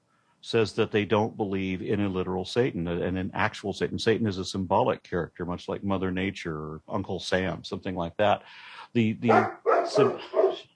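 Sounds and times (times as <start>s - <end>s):
speech: 0.4s - 10.7s
dog barking: 9.3s - 10.7s.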